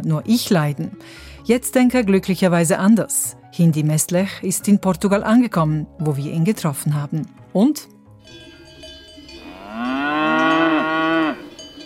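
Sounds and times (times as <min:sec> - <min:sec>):
speech: 0:00.0 - 0:08.5
faint outdoor background: 0:00.0 - 0:11.8
cow mooing in a pasture in Switzerland: 0:09.3 - 0:11.7.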